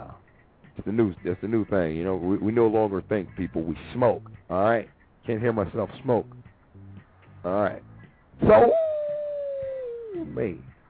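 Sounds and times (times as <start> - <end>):
speech: 0.8 - 6.5, 7.4 - 8.8, 10.2 - 10.7
dog howling: 8.4 - 10.3.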